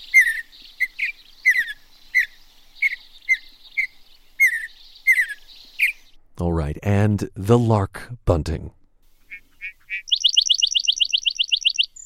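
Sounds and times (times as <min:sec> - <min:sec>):
mountain bluebird short soft whistled calls: 0:00.0 - 0:06.2, 0:09.2 - 0:12.0
speech: 0:06.4 - 0:08.8.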